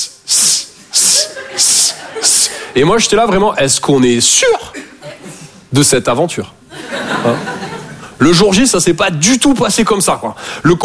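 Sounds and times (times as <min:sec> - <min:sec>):
voice imitating a snake's hiss: 0:00.0 - 0:02.6
laughter: 0:00.9 - 0:03.1, 0:04.7 - 0:05.7, 0:06.7 - 0:08.2
speech: 0:01.6 - 0:04.8, 0:05.7 - 0:06.6, 0:07.2 - 0:07.5, 0:08.2 - 0:10.8.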